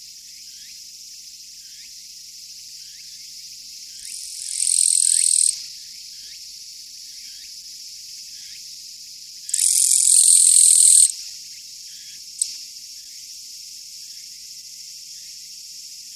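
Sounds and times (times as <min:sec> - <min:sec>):
faint chirping of other insects: 0:00.0 - 0:16.1
Japanese katydid producing harsh high buzzes: 0:04.4 - 0:05.5, 0:09.5 - 0:11.1.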